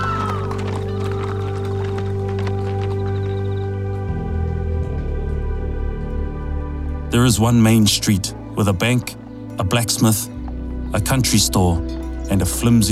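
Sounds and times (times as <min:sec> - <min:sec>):
horses galloping with clattering hooves: 0:00.0 - 0:06.0
steady droning musical background: 0:00.0 - 0:12.9
speech: 0:07.2 - 0:10.3, 0:10.9 - 0:12.9.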